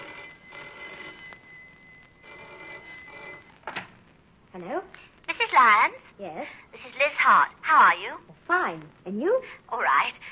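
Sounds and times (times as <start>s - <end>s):
telephone ringing: 0.0s - 3.6s
speech: 4.6s - 10.3s.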